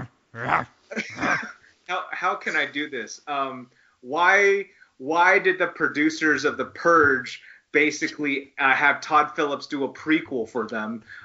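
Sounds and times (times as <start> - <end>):
man growling imitating a dog: 0.0 - 1.5
speech: 0.4 - 11.2.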